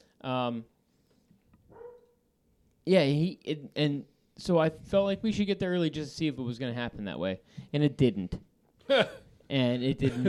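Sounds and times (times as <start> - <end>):
speech: 0.2 - 0.8, 2.9 - 10.2
dog barking on a boat: 1.7 - 2.2.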